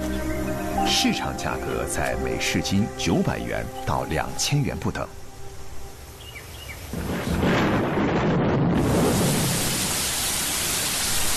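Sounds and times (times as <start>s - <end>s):
steady roar of heavy rain: 0.0s - 11.3s
speech: 0.9s - 5.2s
deep roll of thunder: 6.8s - 11.2s.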